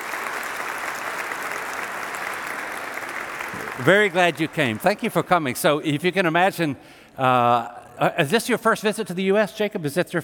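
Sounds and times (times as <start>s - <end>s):
room full of people applauding: 0.0s - 6.2s
speech: 3.8s - 10.2s.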